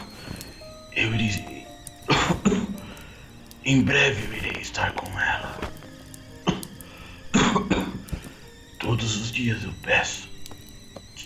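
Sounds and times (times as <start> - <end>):
speech: 1.0 - 1.6, 3.7 - 5.6, 8.9 - 10.3
sick person coughing harshly: 2.1 - 2.8, 6.4 - 8.0.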